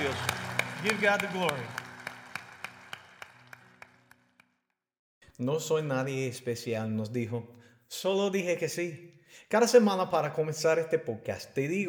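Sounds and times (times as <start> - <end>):
soft sustained musical background: 0.0 - 4.3
audience applause for the Lord: 0.0 - 4.6
speech: 0.1 - 1.8, 5.4 - 11.8.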